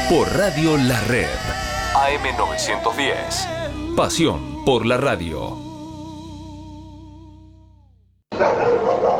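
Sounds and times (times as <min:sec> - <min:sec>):
speech: 0:00.1 - 0:05.7, 0:08.4 - 0:08.9
dogs barking and yelping: 0:08.3 - 0:09.1.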